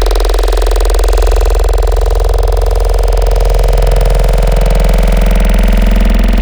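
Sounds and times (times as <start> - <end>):
growl filter wavetable synth: 0.2 - 6.4.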